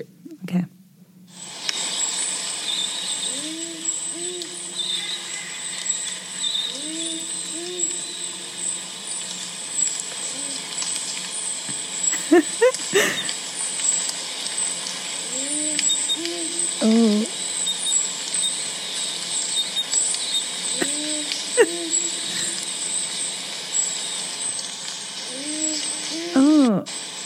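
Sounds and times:
speech: 0.0s - 1.4s
high chorus of night insects: 1.3s - 27.2s
powerful owl giving deep two-note hoots: 2.7s - 8.9s, 10.2s - 10.8s, 15.2s - 23.1s, 25.2s - 26.6s
laughter: 12.1s - 13.3s, 20.8s - 22.6s.

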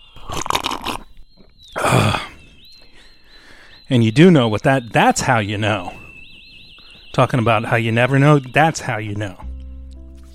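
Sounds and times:
faint steady high whine: 0.0s - 9.4s
slurping sips of a hot drink: 0.2s - 1.1s
speech: 1.9s - 2.2s, 3.9s - 6.0s, 7.2s - 9.4s.

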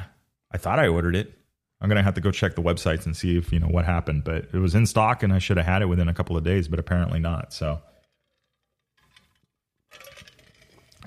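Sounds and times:
speech: 0.5s - 7.9s
ice cubes clinking in a drinking glass: 9.0s - 11.0s
drink sloshing in a tilted or swirled glass: 9.1s - 11.0s.

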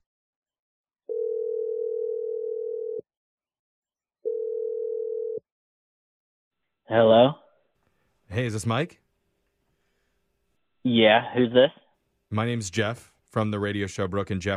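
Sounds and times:
telephone ringing tones: 1.1s - 3.0s, 4.3s - 5.4s
speech: 6.9s - 7.4s, 8.3s - 9.0s, 10.9s - 11.8s, 12.3s - 14.5s.

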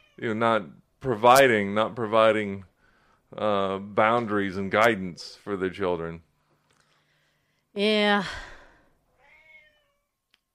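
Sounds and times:
cat meowing: 0.0s - 0.2s, 9.2s - 10.1s
speech: 0.2s - 2.7s, 3.3s - 6.3s, 7.8s - 8.5s.

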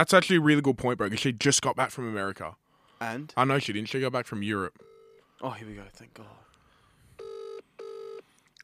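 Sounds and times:
speech: 0.0s - 6.5s
phone ringback tones of an unanswered outgoing call: 7.2s - 8.2s.

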